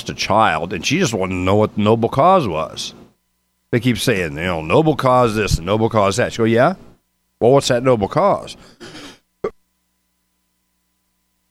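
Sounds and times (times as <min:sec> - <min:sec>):
speech: 0:00.0 - 0:03.0, 0:03.7 - 0:09.1
raspy throat clearing: 0:08.8 - 0:09.6
sharp cough: 0:08.8 - 0:09.6.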